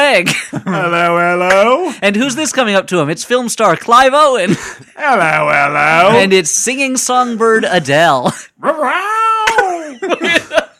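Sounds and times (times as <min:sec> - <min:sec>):
speech: 0:00.1 - 0:10.3
laughter: 0:00.2 - 0:01.3, 0:09.4 - 0:10.7
person imitating a cat meowing: 0:08.6 - 0:09.8.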